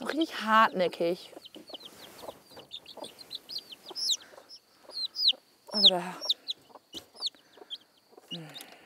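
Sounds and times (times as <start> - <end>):
speech: 0.2 - 1.4, 5.8 - 6.3
hen clucking: 0.9 - 8.7
high chirping calls: 1.1 - 8.8.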